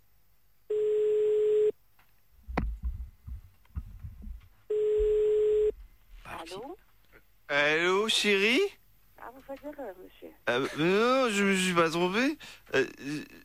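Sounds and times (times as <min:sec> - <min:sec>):
telephone ringing tones as a call is placed: 0:00.7 - 0:01.8, 0:04.7 - 0:05.7
speech: 0:06.5 - 0:06.8, 0:07.5 - 0:08.8, 0:09.4 - 0:13.4.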